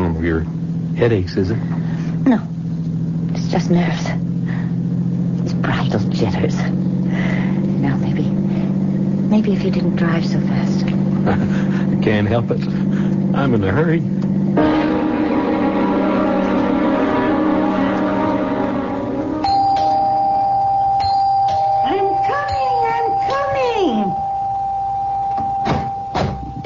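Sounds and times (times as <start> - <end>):
steady hum: 0.0 - 26.6
speech: 0.2 - 2.6, 3.4 - 4.2, 5.6 - 8.0, 9.3 - 14.7
doorbell ringing: 14.6 - 26.1.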